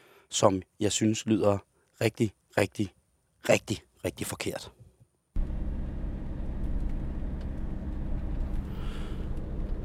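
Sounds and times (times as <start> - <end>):
speech: 0.3 - 4.8
car engine rattling when declutching: 5.4 - 9.8.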